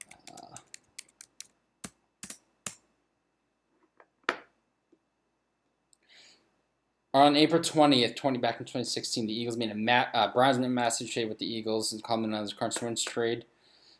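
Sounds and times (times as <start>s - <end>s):
typing on a computer keyboard: 0.0s - 1.6s
speech: 7.2s - 13.5s.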